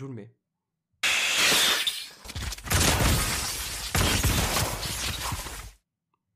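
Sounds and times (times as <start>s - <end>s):
video game creature's explosive attack effect with crunching shattering noise: 1.0s - 5.8s.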